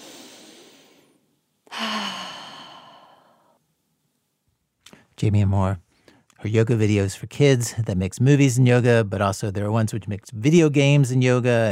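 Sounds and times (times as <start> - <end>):
loud long sighing exhale: 0.0 - 3.6
soft airy intake of a big deep breath: 0.0 - 3.6
speech: 5.2 - 5.8, 6.4 - 11.6.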